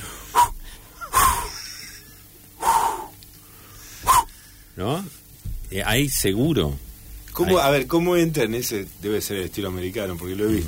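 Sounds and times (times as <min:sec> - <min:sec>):
person imitating heavy panting with breathy huffs: 0:00.0 - 0:01.7, 0:02.6 - 0:03.1, 0:04.0 - 0:04.4
speech: 0:04.8 - 0:06.8, 0:07.4 - 0:10.6.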